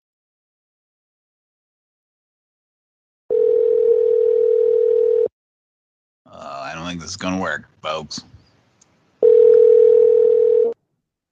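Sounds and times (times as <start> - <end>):
continuous telephone tone: 3.3 - 5.3, 9.2 - 10.8
speech: 6.9 - 8.3.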